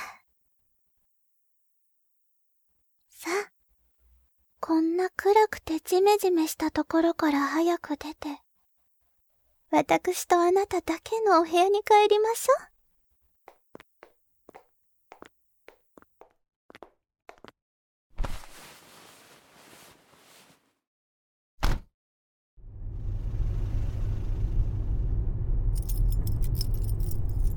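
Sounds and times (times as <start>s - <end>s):
speech: 4.7s - 8.4s, 9.7s - 12.7s
car engine starting and running: 22.6s - 27.5s
keys jingling: 25.8s - 27.5s.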